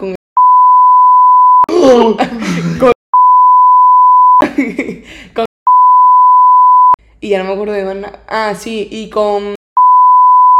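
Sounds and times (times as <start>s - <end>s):
long electronic censor beeps: 0.4s - 1.7s, 3.2s - 4.4s, 5.7s - 7.0s, 9.8s - 10.5s
speech: 1.8s - 3.0s, 4.8s - 5.5s, 7.3s - 9.6s.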